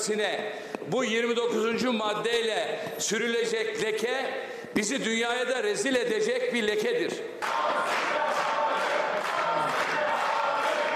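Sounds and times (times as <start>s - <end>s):
speech: 0.0s - 8.1s
large crowd of opposition members roaring in parliament: 7.4s - 10.9s
opposition members clapping in parliament: 7.4s - 10.9s.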